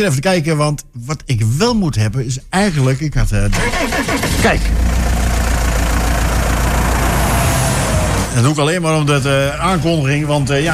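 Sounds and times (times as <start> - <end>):
speech: 0.0 - 5.2, 8.4 - 10.7
old DAF truck engine running: 2.6 - 10.7.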